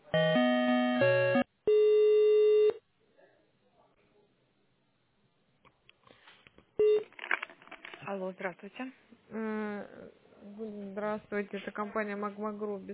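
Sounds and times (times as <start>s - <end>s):
telephone tones during call transfer: 0.2s - 2.8s, 6.8s - 7.2s
speech: 8.3s - 12.9s.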